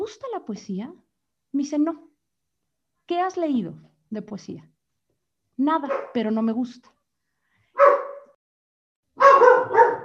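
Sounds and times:
speech: 0.1s - 2.1s, 3.1s - 4.7s, 5.6s - 7.0s
dog barking: 5.8s - 6.2s, 7.8s - 8.4s, 9.2s - 10.0s.

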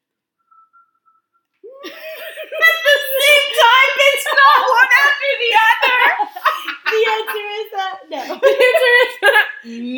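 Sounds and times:
person whistling and humming at once: 0.4s - 1.8s
laughter: 1.6s - 9.7s.

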